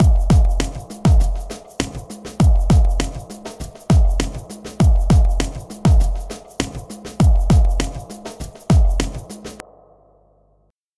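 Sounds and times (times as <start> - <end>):
hip hop drums with spring reverb: 0.0 - 10.4.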